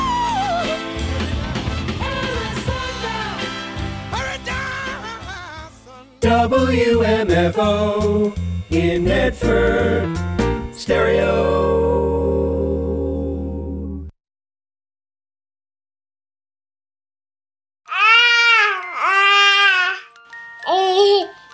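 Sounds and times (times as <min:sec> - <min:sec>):
music: 0:00.0 - 0:14.1, 0:18.4 - 0:21.5
speech: 0:06.2 - 0:10.2, 0:10.9 - 0:12.1
baby babbling in sing-song bursts: 0:17.9 - 0:21.4.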